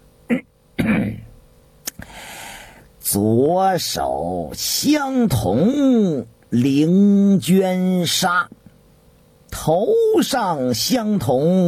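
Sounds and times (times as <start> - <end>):
person clearing throat: 0.3 - 1.4
soft hiss of breath: 2.0 - 2.9
speech: 3.1 - 8.6, 9.6 - 11.6.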